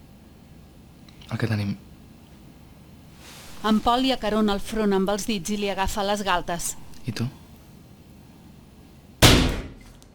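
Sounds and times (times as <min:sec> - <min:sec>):
faint hiss: 0:00.1 - 0:09.2
speech: 0:01.3 - 0:01.9, 0:03.6 - 0:07.4
hard blow against a glass door: 0:09.2 - 0:09.8.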